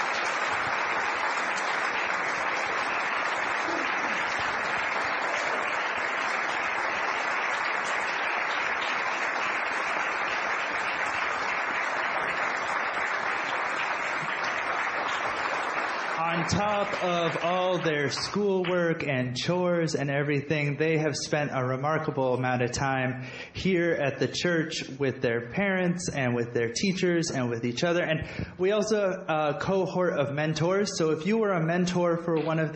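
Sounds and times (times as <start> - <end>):
church audience applauding: 0.0 - 18.8
speech: 16.5 - 32.7.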